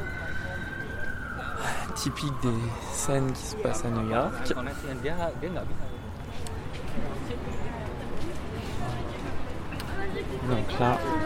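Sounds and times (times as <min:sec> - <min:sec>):
police or ambulance siren wailing: 0:00.0 - 0:06.2
city street traffic rumble in New York near Central Park: 0:00.0 - 0:11.2
speech: 0:02.0 - 0:06.0, 0:10.4 - 0:11.2.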